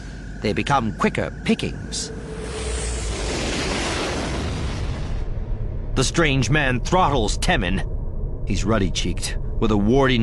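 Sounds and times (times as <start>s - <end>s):
speech: 0.4s - 2.2s, 6.0s - 10.2s
roar of explosions and concentrated fire on a Star Destroyer during a space battle: 2.1s - 7.9s.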